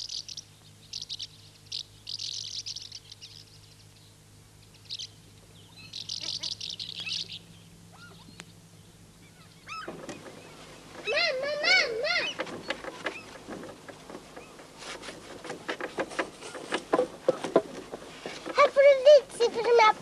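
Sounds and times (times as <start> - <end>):
birds chirping at a carpentry yard in spring: 0.0 - 20.0
steady low hum: 0.0 - 20.0.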